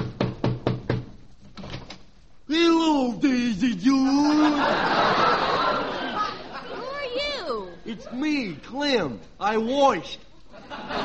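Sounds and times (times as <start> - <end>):
knocking on the door of a house: 0.0 - 1.2
speech: 2.5 - 5.2, 7.9 - 10.2
laughter: 3.8 - 8.3, 10.4 - 11.0.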